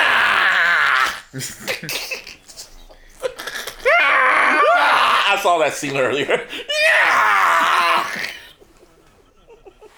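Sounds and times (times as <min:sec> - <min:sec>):
anguished scream from a TV drama scene: 0:00.0 - 0:01.3, 0:03.8 - 0:05.5, 0:06.7 - 0:08.5
speech: 0:01.3 - 0:02.3, 0:05.4 - 0:06.8
laughter: 0:08.0 - 0:09.9.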